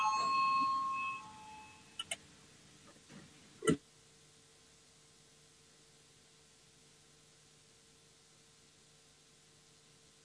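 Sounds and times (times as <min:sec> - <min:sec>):
parliamentary voting bell ringing in a sustained tone: 0:00.0 - 0:01.9.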